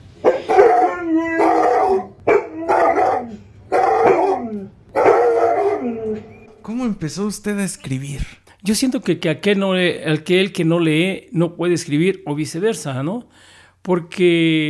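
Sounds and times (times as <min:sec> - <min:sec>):
dogs barking and howling: 0:00.0 - 0:06.5
speech: 0:07.0 - 0:14.6.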